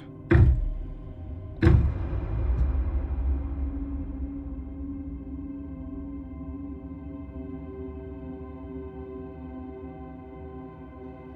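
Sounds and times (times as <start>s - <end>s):
quiet low rumble of room noise: 0.0s - 7.2s
heavy knocks on a front door: 0.3s - 2.1s.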